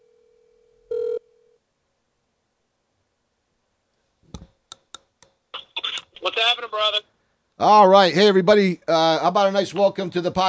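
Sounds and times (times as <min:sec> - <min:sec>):
electronic telephone tone while placing a call: 0:00.0 - 0:01.6
speech: 0:05.7 - 0:10.4.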